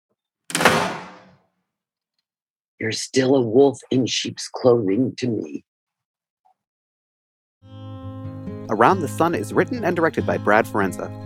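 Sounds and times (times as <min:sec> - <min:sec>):
house door closing with a solid thump and short rattle: 0:00.5 - 0:01.4
speech: 0:02.8 - 0:05.7, 0:08.7 - 0:11.2.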